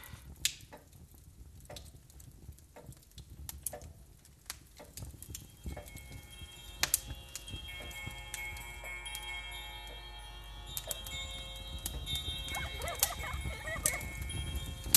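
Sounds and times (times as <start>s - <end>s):
clock ticking with sharp woody clicks: 0.4s - 10.0s, 10.8s - 14.9s
laughter: 12.5s - 14.4s.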